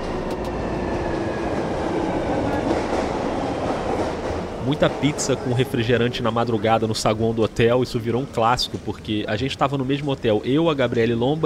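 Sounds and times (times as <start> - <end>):
subway train running with low roar and whining tones: 0.0 - 11.4
speech: 4.7 - 11.4.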